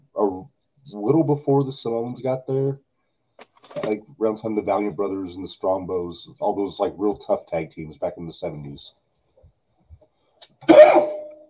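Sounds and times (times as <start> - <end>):
speech: 0.2 - 2.9, 3.9 - 9.0
cough: 10.6 - 11.4.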